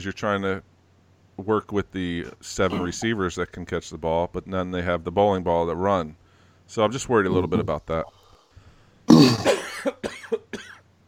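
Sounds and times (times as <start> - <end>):
speech: 0.0 - 0.7, 1.4 - 8.2, 9.2 - 10.2
man coughing: 2.6 - 3.3, 7.2 - 7.8, 9.1 - 10.8.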